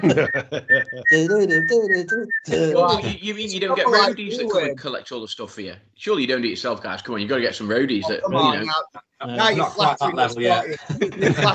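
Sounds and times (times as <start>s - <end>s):
laughter: 0.0s - 1.3s, 2.5s - 4.8s, 9.4s - 11.5s
person whistling a tune in sustained notes: 0.0s - 3.0s
speech: 0.0s - 11.5s.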